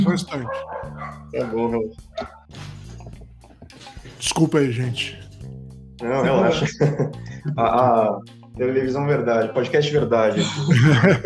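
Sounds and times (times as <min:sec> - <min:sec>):
speech: 0:00.0 - 0:02.7, 0:04.2 - 0:05.2, 0:06.0 - 0:11.2
dogs barking and yelping: 0:00.3 - 0:02.5
laughter: 0:06.2 - 0:08.2, 0:10.3 - 0:11.2.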